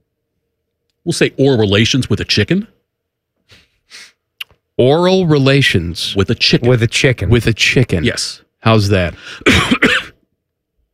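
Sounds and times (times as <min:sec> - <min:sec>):
speech: 0:01.0 - 0:02.7, 0:04.8 - 0:10.0
person coughing harshly: 0:09.3 - 0:10.2.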